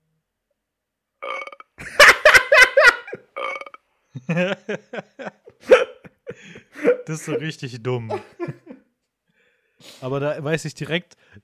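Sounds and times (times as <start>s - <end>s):
recorded burp as a WhatsApp notification tone on a phone: 1.2s - 1.7s, 3.4s - 3.8s
laughter: 1.8s - 7.5s, 8.1s - 8.9s
speech: 4.3s - 5.4s, 7.1s - 8.3s, 10.0s - 11.2s.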